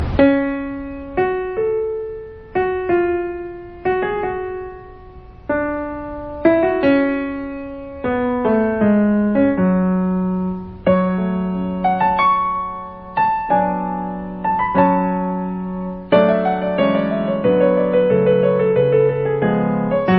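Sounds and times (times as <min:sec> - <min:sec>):
slow piano ringtone: 0:00.0 - 0:20.1.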